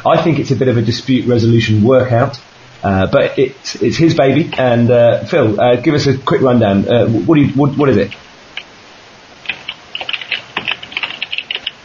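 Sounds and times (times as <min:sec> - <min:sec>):
speech: 0:00.0 - 0:08.2
typing on a computer keyboard: 0:09.4 - 0:11.8.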